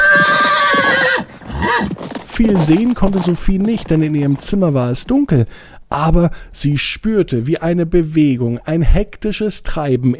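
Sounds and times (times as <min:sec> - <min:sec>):
loud drawn-out horse whinny: 0:00.0 - 0:03.9
horses galloping with thudding hoofbeats: 0:00.0 - 0:05.5
speech: 0:02.4 - 0:10.1.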